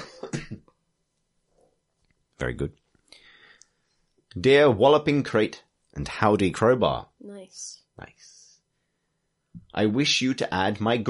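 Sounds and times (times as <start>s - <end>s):
person coughing: 0.0s - 0.6s
speech: 2.4s - 2.8s, 4.4s - 8.4s, 9.7s - 11.0s.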